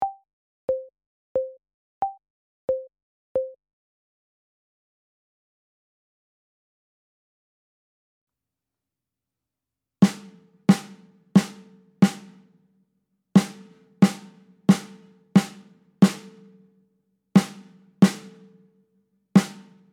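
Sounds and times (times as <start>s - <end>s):
snare drum: 10.0s - 12.6s, 13.4s - 16.6s, 17.4s - 18.7s, 19.4s - 19.9s.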